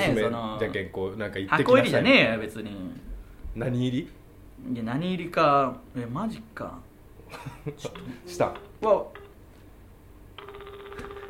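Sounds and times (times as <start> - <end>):
speech: 0.0 - 9.2
ringback tone of an outgoing telephone call: 10.4 - 11.2.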